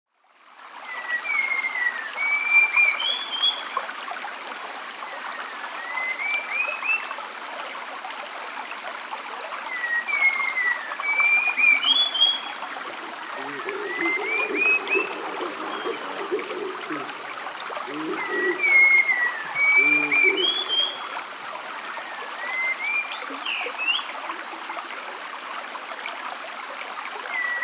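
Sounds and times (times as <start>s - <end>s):
rainforest stream flowing: 0.1s - 27.6s
spot-winged thrush singing: 13.0s - 21.0s.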